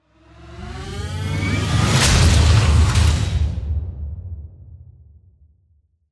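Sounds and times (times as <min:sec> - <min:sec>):
digital mechanical robot joining and transforming slam: 0:01.9 - 0:03.6.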